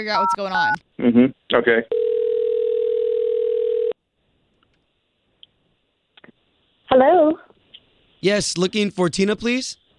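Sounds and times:
speech: 0.0s - 2.0s, 6.9s - 7.4s, 8.2s - 9.8s
telephone dial tone: 1.9s - 4.0s.

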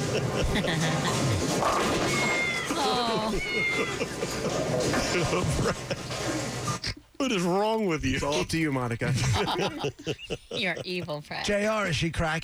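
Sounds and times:
laughter: 0.0s - 1.6s, 2.3s - 6.8s, 8.1s - 11.2s
loud clattering crash of bowling pins: 0.0s - 6.8s
speech: 0.2s - 12.4s
several high wavering kitten meows: 2.1s - 4.0s.

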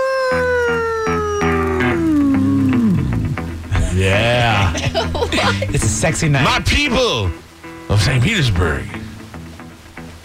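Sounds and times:
long loud howl gliding downward: 0.0s - 3.3s
laughter: 3.7s - 6.0s
speech: 4.9s - 9.0s.

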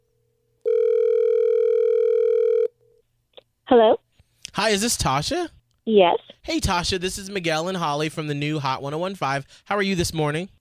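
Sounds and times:
telephone dialing tone: 0.6s - 2.7s
speech: 3.7s - 4.0s, 4.6s - 10.5s.

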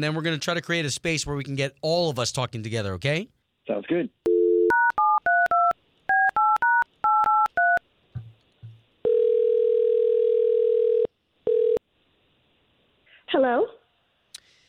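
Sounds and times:
speech: 0.0s - 4.2s
telephone ringback tone: 4.3s - 7.8s, 9.1s - 11.8s
touch-tone keypad beeps dialing out: 4.3s - 7.8s.

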